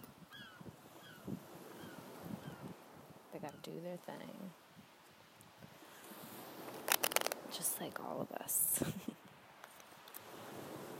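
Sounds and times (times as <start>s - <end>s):
wind: 0.0s - 10.9s
seagulls calling: 0.3s - 2.7s
speech: 3.4s - 4.6s, 7.5s - 9.2s.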